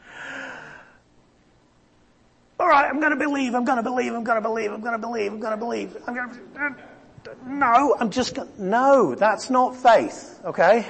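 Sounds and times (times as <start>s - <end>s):
person drawing in a deep breath: 0.0s - 1.0s
speech: 2.7s - 10.8s.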